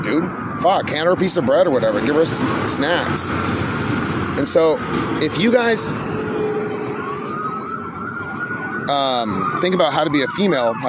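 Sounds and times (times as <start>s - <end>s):
emergency siren wailing from a passing vehicle: 0.0s - 10.8s
speech: 0.1s - 6.1s, 8.9s - 10.8s.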